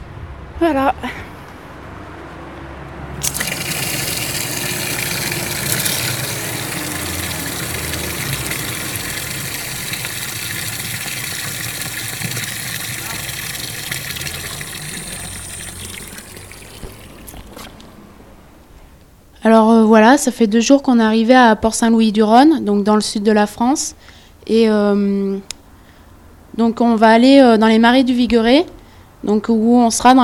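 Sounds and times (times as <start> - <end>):
speech: 0.6 - 1.3, 19.5 - 25.5, 26.6 - 30.2
water filling bottles at a village fountain: 3.2 - 17.8.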